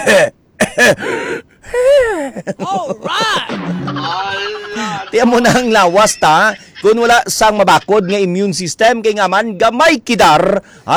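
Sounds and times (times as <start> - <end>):
speech: 0.0 - 1.2, 5.2 - 10.9
person clearing throat: 0.0 - 5.0
person coughing: 0.0 - 5.1
person groaning: 1.7 - 5.0
laughter: 1.7 - 8.4.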